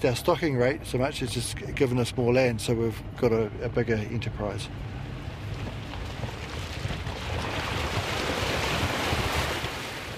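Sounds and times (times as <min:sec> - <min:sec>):
speech: 0:00.0 - 0:05.0
gusts of wind buffeting the microphone: 0:04.7 - 0:10.1
rushing river water: 0:05.2 - 0:10.1.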